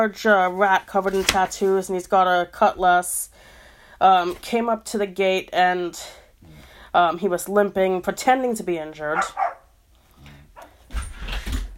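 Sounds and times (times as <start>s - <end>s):
speech: 0.0s - 6.2s, 6.9s - 9.5s
dog barking: 9.1s - 9.7s
dog whining: 9.2s - 9.7s.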